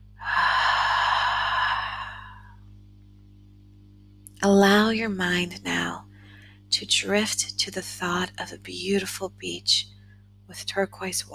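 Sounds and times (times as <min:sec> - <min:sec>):
deep breath in and out during a guided relaxation exercise: 0:00.2 - 0:02.7
speech: 0:04.4 - 0:06.0, 0:06.7 - 0:11.3.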